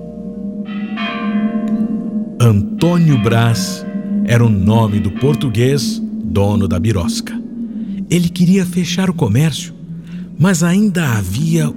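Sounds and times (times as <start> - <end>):
old clock striking midnight with resonant bell strokes: 0.7 - 6.6
steady low rumble: 1.4 - 11.7
speech: 2.4 - 7.4, 8.1 - 9.8, 10.4 - 11.7.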